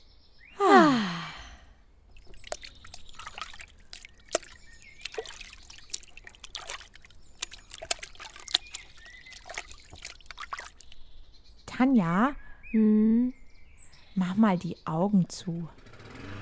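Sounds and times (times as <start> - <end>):
person sighing contentedly: 0.6 - 1.7
feet settling into water: 2.1 - 11.1
speech: 11.8 - 13.4, 14.2 - 15.8.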